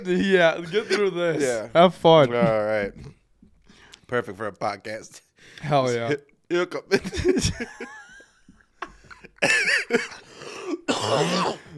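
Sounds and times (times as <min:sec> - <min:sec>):
speech: 0:00.0 - 0:03.2, 0:04.1 - 0:08.0, 0:09.4 - 0:10.2, 0:10.9 - 0:11.7
person chuckling: 0:06.9 - 0:10.2
throat clearing: 0:08.8 - 0:11.7
person coughing: 0:08.9 - 0:11.7.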